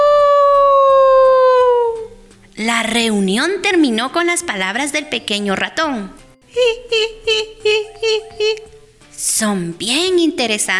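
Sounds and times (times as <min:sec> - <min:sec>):
coyote howling: 0:00.0 - 0:02.2
speech: 0:02.7 - 0:10.7.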